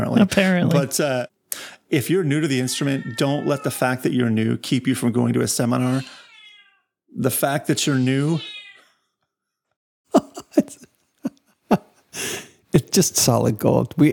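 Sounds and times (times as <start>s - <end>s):
speech: 0.0s - 6.2s, 7.1s - 8.6s, 12.7s - 14.1s
domestic cat meowing: 2.4s - 4.0s, 5.7s - 7.0s, 7.8s - 9.1s
laughter: 10.1s - 12.9s.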